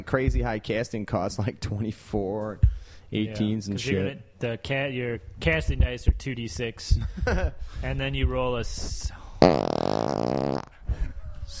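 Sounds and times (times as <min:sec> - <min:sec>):
speech: 0:00.0 - 0:10.5
fart: 0:09.4 - 0:10.8.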